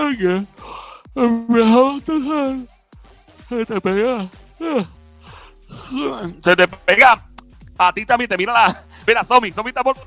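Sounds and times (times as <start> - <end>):
speech: 0.1 - 0.6, 1.2 - 2.7, 3.5 - 5.0, 5.7 - 10.0
person yawning: 4.2 - 5.0, 5.7 - 6.2.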